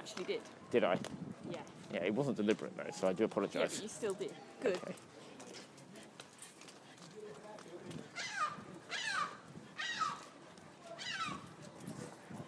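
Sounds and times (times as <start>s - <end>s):
steady murmur: 0.0s - 12.4s
speech: 0.1s - 5.4s
birds squawking with harsh downward-sweeping cries: 8.2s - 10.2s, 11.0s - 11.4s.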